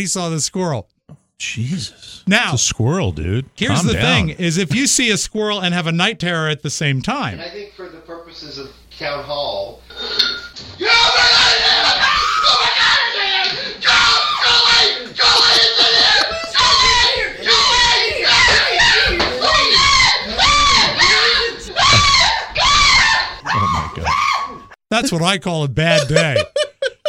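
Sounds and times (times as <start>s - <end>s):
speech: 0.0s - 12.6s, 25.0s - 26.6s
laughter: 3.6s - 4.3s, 14.7s - 19.6s, 25.8s - 27.0s
person yelling and screaming: 3.7s - 4.3s, 10.8s - 24.5s.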